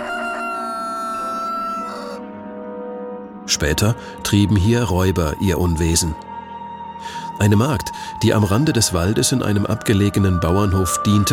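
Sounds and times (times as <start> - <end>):
rooster crowing: 0.0 - 2.2
speech: 3.5 - 6.3, 7.0 - 11.3.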